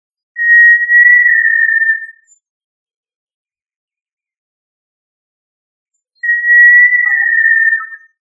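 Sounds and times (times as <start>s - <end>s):
tinamou whistled call: 0.4s - 2.4s, 6.2s - 8.2s.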